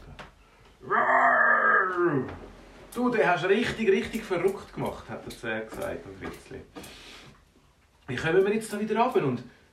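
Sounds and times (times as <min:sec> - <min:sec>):
bear roaring and growling: 0:00.8 - 0:02.4
speech: 0:02.0 - 0:07.1, 0:08.1 - 0:09.6.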